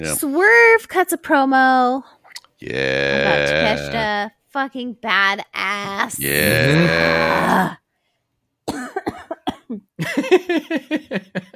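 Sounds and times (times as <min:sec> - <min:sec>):
speech: 0:00.0 - 0:07.8, 0:09.7 - 0:11.5
laughter: 0:02.8 - 0:04.1, 0:10.0 - 0:11.5
loud harsh cough: 0:08.7 - 0:09.9.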